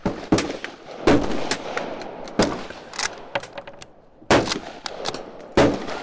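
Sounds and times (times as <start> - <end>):
gunshots from an old Russian rifle from the 1930s: 0.0 - 6.0.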